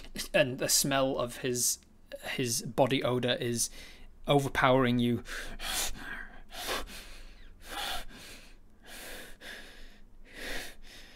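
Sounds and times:
speech: 0.4 - 6.1
voice imitating a man's loud rasping heavy panting: 5.3 - 11.1.

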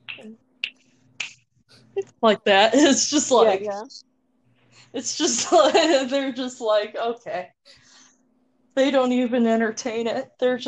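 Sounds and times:
sharp crisp finger snaps: 0.0 - 1.4
speech: 2.2 - 4.1, 4.9 - 7.8, 8.8 - 10.6.

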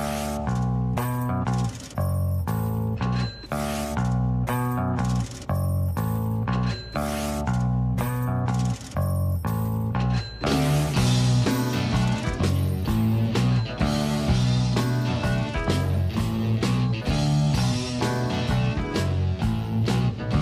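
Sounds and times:
cash register clatter: 0.0 - 5.7, 6.4 - 12.5
coins clinking: 0.0 - 12.4
low bass line: 0.0 - 20.4.

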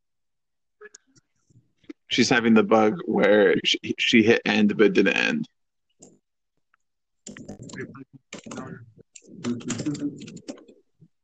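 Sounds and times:
speech: 2.1 - 5.6, 7.8 - 10.6
furious typing on a computer keyboard: 7.2 - 10.8.

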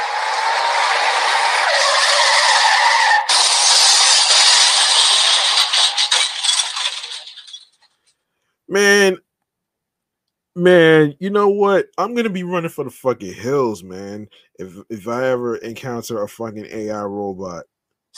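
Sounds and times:
car tires skidding: 0.0 - 7.6
speech: 8.7 - 9.2, 10.6 - 17.7.

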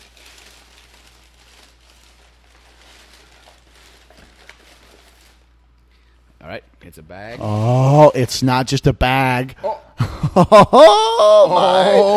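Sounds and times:
paper packaging crinkling as it is pulled from a box: 0.0 - 5.7
speech: 6.5 - 12.1.

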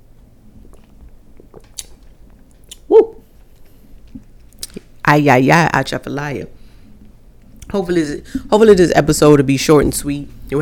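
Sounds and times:
person sipping cranberry juice: 0.5 - 4.8
speech: 5.1 - 6.6, 7.7 - 10.6.

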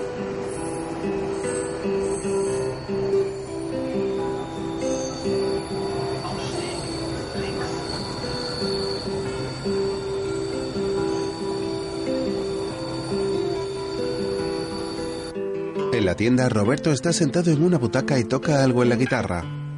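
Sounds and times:
train wheels squealing on the rails: 0.0 - 15.4
speech: 16.0 - 19.6.

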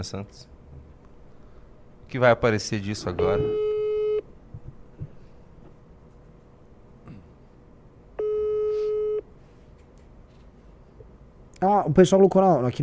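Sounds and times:
speech: 0.0 - 0.5, 2.1 - 3.6, 11.6 - 12.8
telephone busy signal while a call is being placed: 3.1 - 4.2, 8.2 - 9.2.

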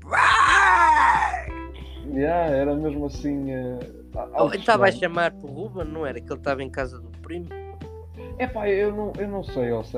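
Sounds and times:
person imitating a man screaming outside: 0.0 - 1.5, 4.7 - 5.1
speech: 2.2 - 7.6, 8.4 - 9.9.

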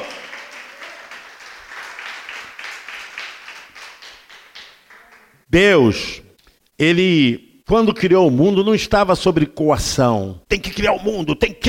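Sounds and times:
congregation applauding: 0.0 - 5.5
speech: 5.5 - 6.2, 6.8 - 11.6.

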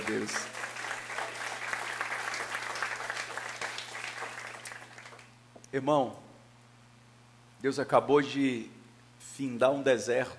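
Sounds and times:
audience applauding at a church service: 0.0 - 5.4
speech: 0.1 - 0.6, 5.7 - 6.2, 7.6 - 10.3.

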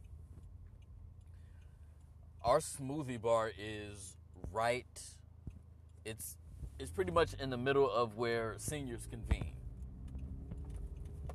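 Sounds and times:
faint evenly spaced ticking clicks: 0.0 - 2.9, 9.3 - 11.3
steady low rumble of a car interior: 0.0 - 11.3
speech: 2.4 - 5.2, 6.0 - 9.6.

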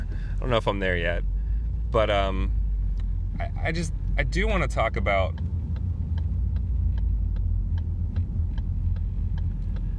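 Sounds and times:
car engine and road rumble while merging into another lane: 0.0 - 9.9
speech: 0.4 - 1.3, 1.9 - 2.6, 3.3 - 5.5
faint regular clicking: 5.0 - 9.9.

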